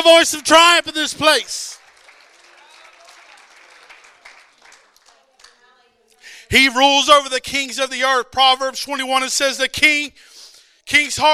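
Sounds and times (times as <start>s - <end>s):
speech: 0.0s - 1.8s, 6.5s - 10.3s, 10.9s - 11.3s
sizable crowd clapping hands: 0.0s - 5.8s.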